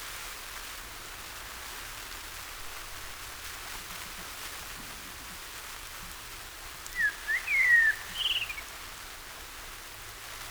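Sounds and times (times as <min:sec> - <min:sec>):
common blackbird Turdus merula singing a fluted phrase: 0:06.9 - 0:08.7.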